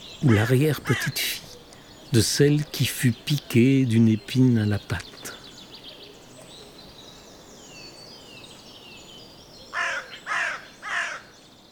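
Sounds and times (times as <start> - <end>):
birds chirping: 0.0 - 11.7
speech: 0.2 - 1.4, 2.1 - 5.1
crow cawing: 0.2 - 1.8, 9.7 - 11.3.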